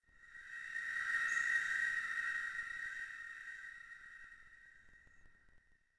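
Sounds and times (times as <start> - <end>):
ambient choir pad: 0.0 - 5.7.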